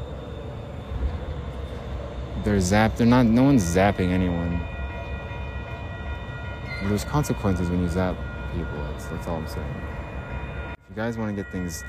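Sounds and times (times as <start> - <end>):
airplane passing overhead with low rumble and faint high whine: 0.0 - 11.8
speech: 2.4 - 4.7, 6.8 - 10.0, 11.0 - 11.8.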